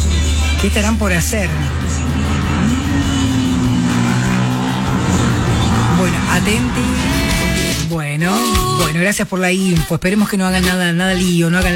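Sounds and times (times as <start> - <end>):
motorcycles revving: 0.0 - 8.9
speech: 0.6 - 3.2, 6.1 - 11.7.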